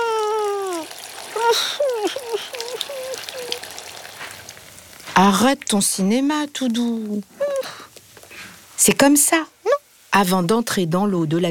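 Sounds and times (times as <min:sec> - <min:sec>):
shower water running: 0:00.0 - 0:07.6
speech: 0:01.5 - 0:02.2, 0:05.2 - 0:07.4, 0:08.8 - 0:09.6, 0:10.2 - 0:11.4.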